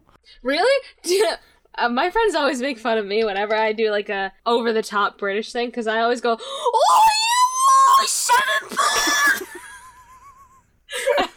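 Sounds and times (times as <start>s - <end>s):
speech: 0.4s - 7.3s
very loud harsh distorted vocal screech: 6.8s - 9.6s.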